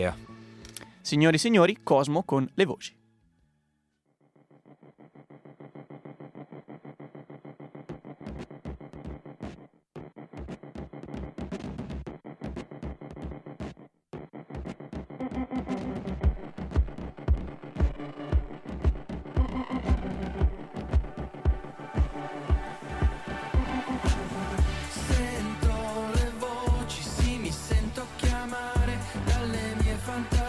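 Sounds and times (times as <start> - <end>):
speech: 0.0 - 0.3, 1.0 - 3.0
electronic music track intro with droning throbbing pulsing beat: 10.0 - 30.4.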